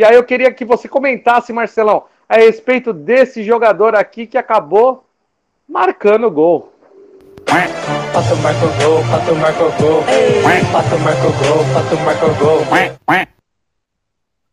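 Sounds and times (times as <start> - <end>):
speech: 0.0 - 5.0, 5.7 - 6.7, 7.4 - 13.4
duck quacking sound effect: 7.4 - 7.9, 10.2 - 11.0, 12.6 - 13.4.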